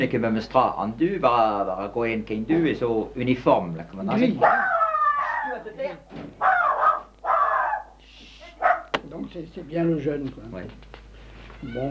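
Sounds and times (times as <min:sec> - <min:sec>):
speech: 0:00.0 - 0:04.8, 0:09.1 - 0:10.9, 0:11.6 - 0:11.8
birds calling with harsh raspy caws: 0:04.2 - 0:09.2, 0:11.2 - 0:11.8.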